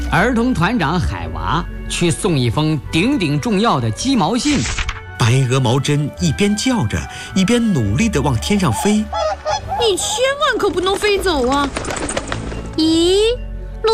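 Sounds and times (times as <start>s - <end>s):
speech: 0.1s - 9.2s, 9.8s - 12.0s, 12.8s - 13.9s
goose honking: 8.5s - 10.4s.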